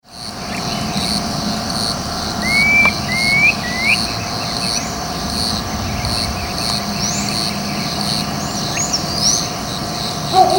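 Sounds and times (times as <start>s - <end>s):
Phyllomyias fasciatus calling: 0.3s - 10.5s.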